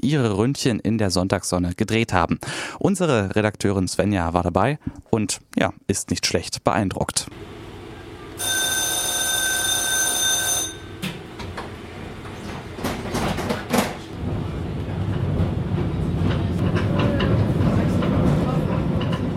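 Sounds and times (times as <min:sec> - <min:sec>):
speech: 0:00.0 - 0:07.6
steady low mechanical roar of historic tram: 0:07.3 - 0:19.3
historic tram rumbling along its rails with clattering squealing wheels: 0:07.4 - 0:19.3
historic tram sustained bell-like ringing tone: 0:08.4 - 0:11.6.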